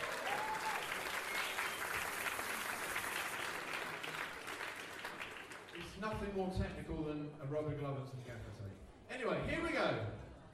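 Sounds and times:
audience applause: 0:00.0 - 0:06.0
speech: 0:06.0 - 0:10.2.

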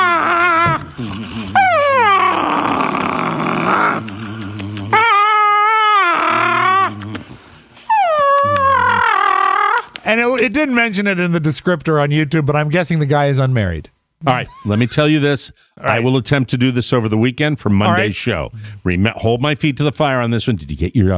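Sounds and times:
grumpy dog moaning and whining, refusing to move: 0:00.0 - 0:10.0
speech: 0:01.0 - 0:01.6, 0:10.4 - 0:21.1.

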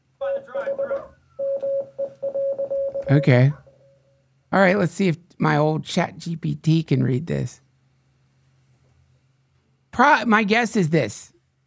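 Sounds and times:
mid-pitched electronic Morse code beeps: 0:00.2 - 0:04.0
speech: 0:03.1 - 0:03.6, 0:04.5 - 0:07.6, 0:10.0 - 0:11.3.

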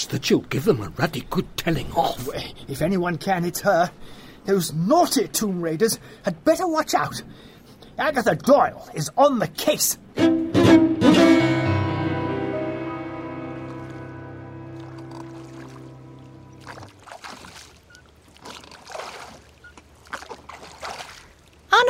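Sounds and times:
speech: 0:00.0 - 0:10.4
ringing musical chord: 0:10.2 - 0:16.7
small boat moving across lake water: 0:13.6 - 0:21.8.

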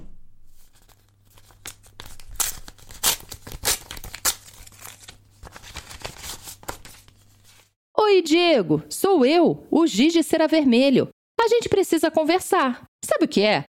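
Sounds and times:
letter paper tearing as it is opened: 0:00.6 - 0:07.7
speech: 0:08.2 - 0:13.7.

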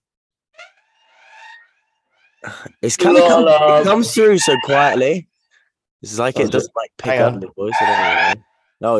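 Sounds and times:
speech: 0:02.4 - 0:05.3, 0:06.0 - 0:08.9
alarm sound effect, wavering electronic tone with bright harmonics: 0:03.0 - 0:05.1, 0:07.7 - 0:08.4.

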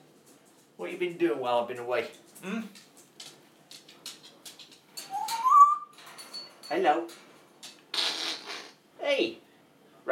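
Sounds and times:
speech: 0:00.8 - 0:02.9, 0:06.7 - 0:07.2, 0:09.1 - 0:09.4
pet bird chirping and whistling: 0:05.1 - 0:05.9.

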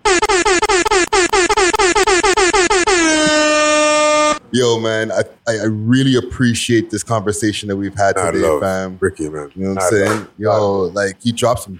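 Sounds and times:
air horn blasts: 0:00.0 - 0:04.4
speech: 0:04.6 - 0:11.7.

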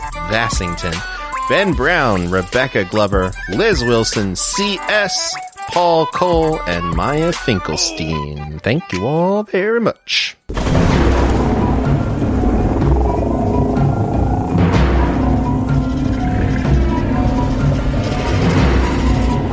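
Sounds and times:
speech: 0:00.3 - 0:10.8
rolling thunder in a thunderstorm: 0:10.5 - 0:19.5.

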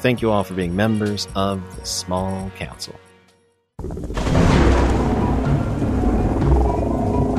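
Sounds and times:
speech: 0:00.0 - 0:03.0, 0:03.8 - 0:04.5
deep booming thunder in a loud thunderstorm: 0:04.2 - 0:07.2.

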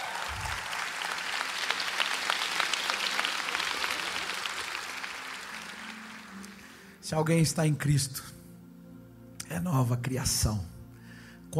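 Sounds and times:
large audience applauding: 0:00.0 - 0:07.0
speech: 0:07.1 - 0:08.4, 0:09.5 - 0:10.8.

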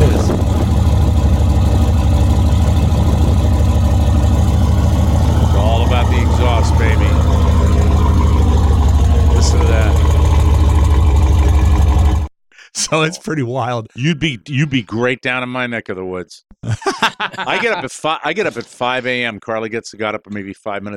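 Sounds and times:
modified Mercedes S-Class car engine idling: 0:00.0 - 0:12.3
laughter: 0:09.4 - 0:09.9, 0:16.6 - 0:19.2
speech: 0:12.9 - 0:20.9.

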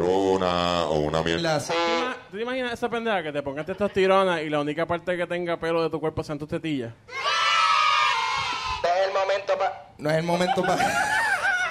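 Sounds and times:
speech: 0:00.0 - 0:07.3, 0:09.4 - 0:11.2
many children screaming together: 0:07.1 - 0:08.8
laughter: 0:10.4 - 0:11.6.

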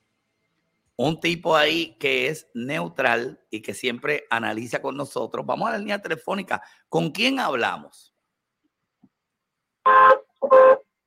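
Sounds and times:
speech: 0:01.0 - 0:08.1, 0:09.8 - 0:10.8
car horn honking: 0:09.9 - 0:11.0.

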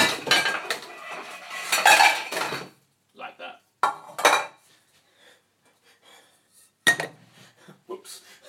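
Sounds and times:
metal pots clattering as pulled out of a kitchen cupboard: 0:00.0 - 0:02.7, 0:03.8 - 0:04.6.

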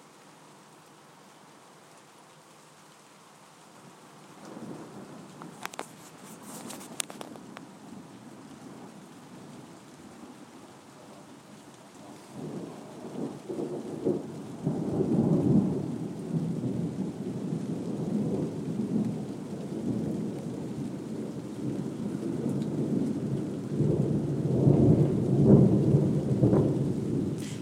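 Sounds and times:
steady rain falling outdoors: 0:00.0 - 0:27.6
deep rolling thunder: 0:11.9 - 0:27.6.

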